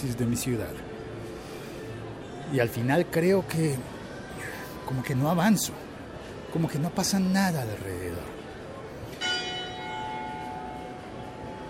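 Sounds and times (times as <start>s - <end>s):
speech: 0.0s - 0.9s, 2.5s - 4.0s, 4.9s - 5.9s, 6.5s - 8.4s
church bell ringing: 9.2s - 11.6s.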